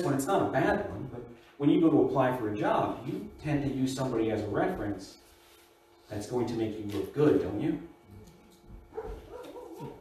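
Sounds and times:
speech: 0.0 - 5.2, 6.1 - 7.9
low hum: 0.0 - 10.0
dog barking with a whiny edge: 8.9 - 10.0.

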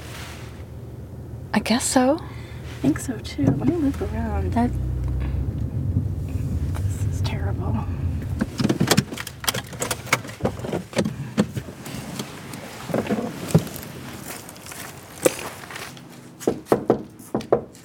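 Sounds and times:
faint rumble: 0.0 - 16.0
speech: 1.5 - 4.9
knocking on a house door: 16.7 - 17.7.

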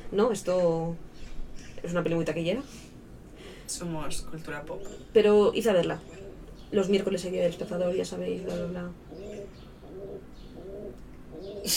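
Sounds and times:
speech: 0.1 - 1.1, 1.8 - 2.9, 3.7 - 9.6
pigeon in heat cooing: 5.8 - 11.7.

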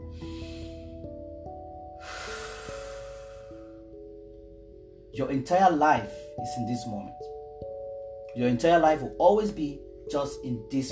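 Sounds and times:
slow breath taken in and let out: 0.0 - 4.0
gentle sustained musical tones: 0.0 - 10.8
speech: 5.2 - 7.3, 8.4 - 10.8.

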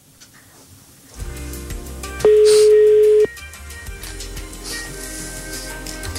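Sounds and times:
telephone ringing with electronic tone: 2.2 - 3.3.

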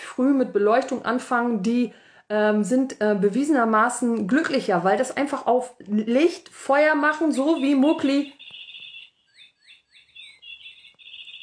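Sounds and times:
speech: 0.2 - 8.4
light-activated toy bird electronic chirping: 7.6 - 11.4.

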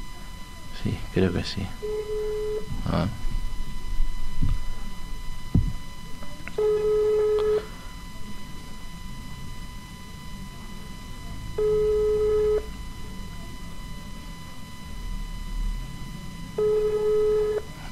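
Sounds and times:
low steady hum: 0.0 - 17.9
speech: 0.8 - 2.2, 2.9 - 3.3
phone ringback tone over a speakerphone on the Movistar network: 1.8 - 2.8, 6.6 - 8.0, 11.5 - 12.7, 16.6 - 17.9.

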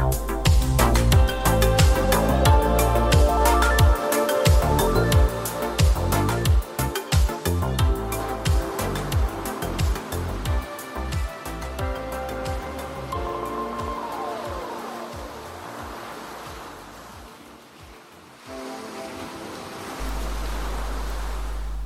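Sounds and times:
electronic music track with thumping bass beats and synth tones: 0.0 - 15.7, 20.0 - 21.8
ocean waves crashing: 0.0 - 21.8.

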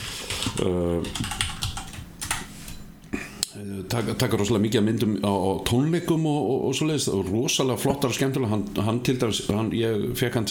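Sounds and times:
typing on a computer keyboard while adding a link: 0.2 - 2.5
speech: 0.6 - 1.5, 3.6 - 10.5.

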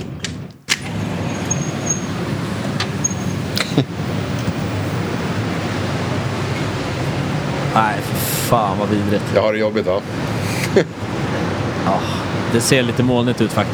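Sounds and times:
ocean waves rushing: 0.8 - 13.7
laughter: 1.4 - 13.7
speech: 8.5 - 11.0, 11.9 - 13.7.

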